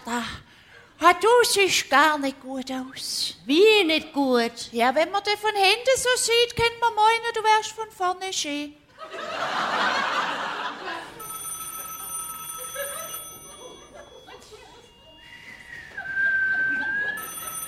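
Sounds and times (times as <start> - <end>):
speech: 0.0 - 9.7
audience laughter: 9.0 - 11.2, 15.5 - 17.5
electronic telephone ringing: 11.1 - 15.2, 17.0 - 17.6
rising whistle-like tone: 15.1 - 17.2.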